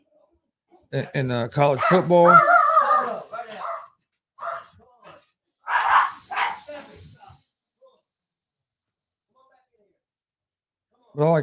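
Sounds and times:
speech: 0.9s - 2.5s, 11.2s - 11.4s
dog barking excitedly: 1.7s - 4.8s, 5.6s - 6.7s.

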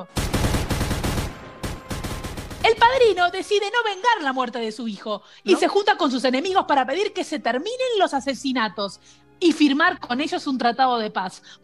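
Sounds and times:
speech: 0.0s - 0.4s, 2.8s - 11.6s
machine gun fire: 0.0s - 3.4s.

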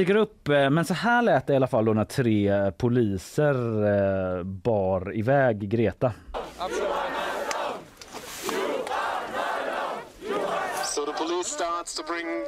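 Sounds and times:
speech: 0.0s - 7.1s, 11.3s - 12.4s
crowd chanting at a protest: 6.3s - 11.7s.

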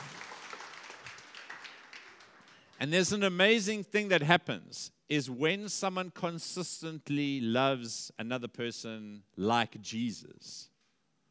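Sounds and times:
audience clapping: 0.0s - 2.9s
speech: 2.8s - 10.7s.

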